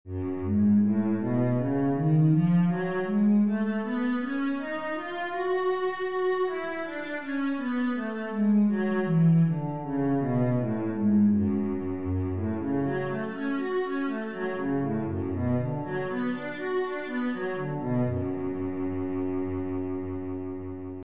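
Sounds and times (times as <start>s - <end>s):
cello in F sharp minor: 0.1s - 21.0s.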